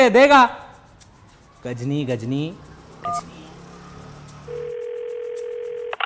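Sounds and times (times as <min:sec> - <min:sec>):
speech: 0:00.0 - 0:00.6, 0:01.6 - 0:03.4
short electronic beep of a phone ringing tone: 0:03.0 - 0:03.3.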